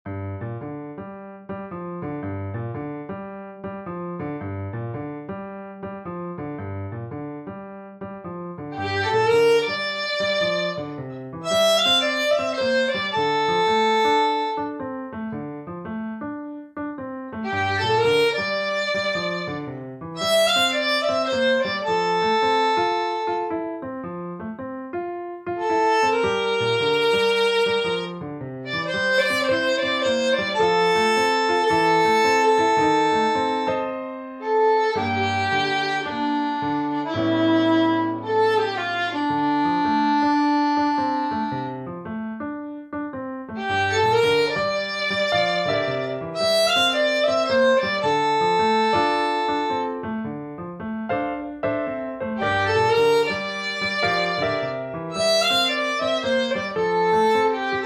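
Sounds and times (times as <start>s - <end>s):
piano playing: 0.0s - 57.8s
beginner violin playing: 8.6s - 15.0s, 17.4s - 23.8s, 25.6s - 42.0s, 43.6s - 50.1s, 51.1s - 57.8s.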